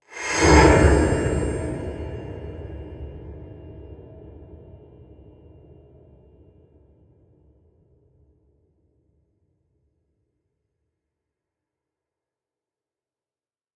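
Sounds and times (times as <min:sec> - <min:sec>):
eerie tense metal hit with lots of modulation: 0:00.2 - 0:03.2.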